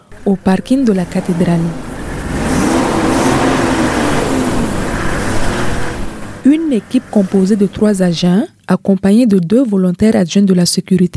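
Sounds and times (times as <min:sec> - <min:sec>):
pick-up truck carrying a police team driving off in Ouagadougou: 0:00.0 - 0:08.3
speech: 0:00.2 - 0:01.9, 0:06.5 - 0:11.1.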